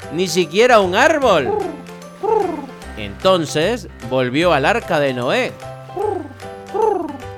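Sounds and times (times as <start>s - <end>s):
speech: 0.1s - 6.1s
dove cooing: 1.2s - 2.9s, 5.9s - 7.3s.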